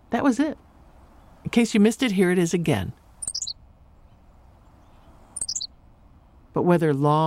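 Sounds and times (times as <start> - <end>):
quiet outdoor background: 0.0 - 7.2
speech: 0.1 - 0.6, 1.4 - 3.0, 6.6 - 7.2
Henslow's sparrow short high hiccuping song: 3.1 - 6.4.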